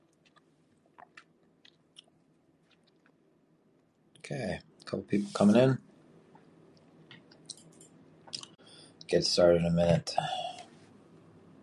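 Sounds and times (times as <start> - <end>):
person chewing mango with wet smacking: 0.0 - 3.2
speech: 4.3 - 5.8, 9.1 - 10.4.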